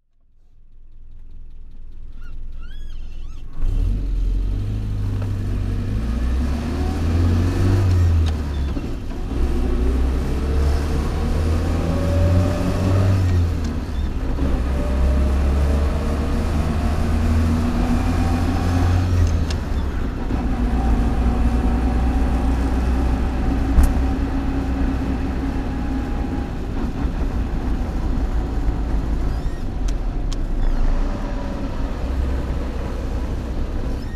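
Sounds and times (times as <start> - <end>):
1975 Land Rover 88 soft top petrol engine driving: 0.2 - 34.1.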